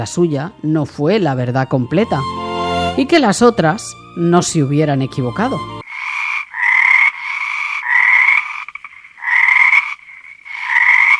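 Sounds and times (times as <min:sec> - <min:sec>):
speech: 0:00.0 - 0:02.4, 0:03.0 - 0:05.8
frogs croaking: 0:05.8 - 0:11.1.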